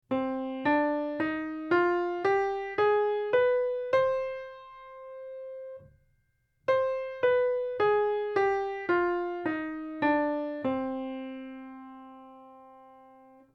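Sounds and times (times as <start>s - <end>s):
harmonic minor scale: 0.1s - 5.9s, 6.7s - 13.5s.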